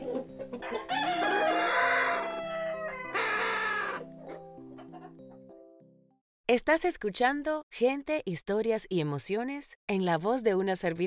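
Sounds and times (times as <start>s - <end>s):
young rooster crowing: 0.6s - 4.0s
speech: 6.5s - 11.0s.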